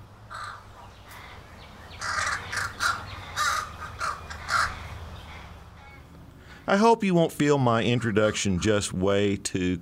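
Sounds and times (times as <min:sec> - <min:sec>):
American crow cawing: 0:00.3 - 0:01.4, 0:02.0 - 0:06.6
speech: 0:06.7 - 0:09.7.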